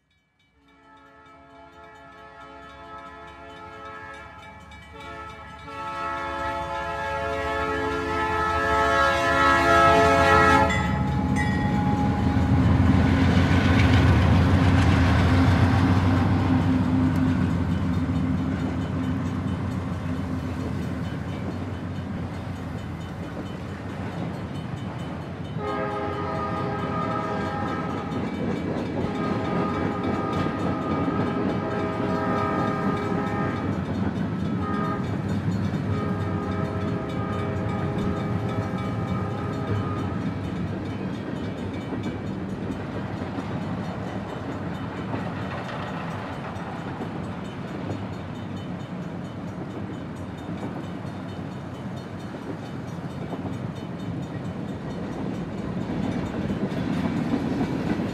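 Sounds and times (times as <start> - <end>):
train passing by: 0.0 - 58.1.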